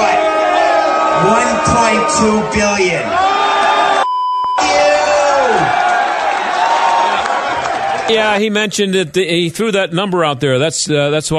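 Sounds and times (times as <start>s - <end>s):
large crowd booing: 0.0s - 4.0s, 4.6s - 8.4s
people shouting: 0.0s - 4.0s, 4.6s - 8.1s
speech: 1.2s - 3.3s, 8.1s - 11.3s.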